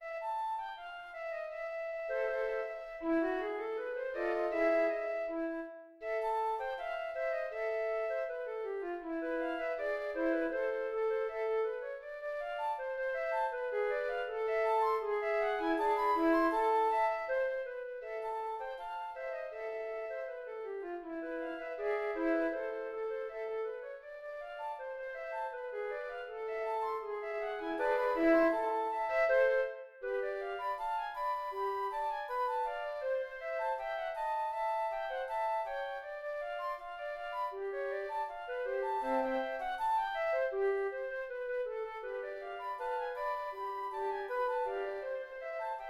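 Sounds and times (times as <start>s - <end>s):
flute quartet: 0.1s - 45.8s.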